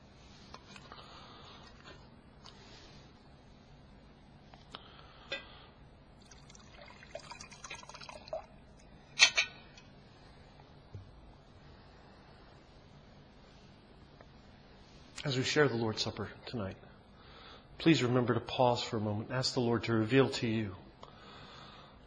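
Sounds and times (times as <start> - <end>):
liquid being poured into a cup: 6.2 - 8.6
speech: 15.2 - 16.9, 17.8 - 20.8.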